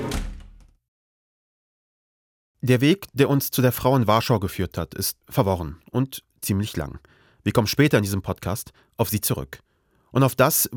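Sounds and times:
door latch rattling: 0.0s - 0.7s
door swinging shut with a solid thud: 0.0s - 0.8s
speech: 2.6s - 10.7s.

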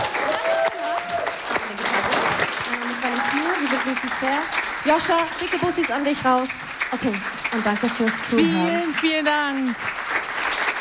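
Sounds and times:
audience cheers and whistles: 0.0s - 1.4s
audience clapping: 0.0s - 10.7s
speech: 4.2s - 10.0s.

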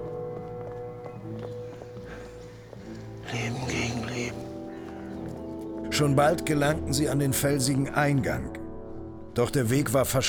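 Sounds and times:
horse hooves galloping: 0.0s - 5.9s
speech: 6.0s - 8.6s, 9.4s - 10.2s.

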